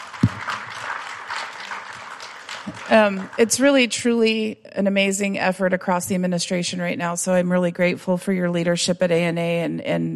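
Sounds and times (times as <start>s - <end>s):
crowd applauding: 0.0s - 4.0s
speech: 2.6s - 10.1s.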